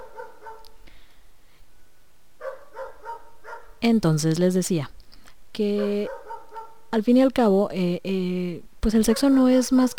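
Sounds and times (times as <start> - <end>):
dog barking: 0.0 - 0.8, 2.4 - 3.8, 5.8 - 6.9, 9.1 - 9.9
speech: 3.8 - 5.0, 5.6 - 6.2, 6.9 - 9.9.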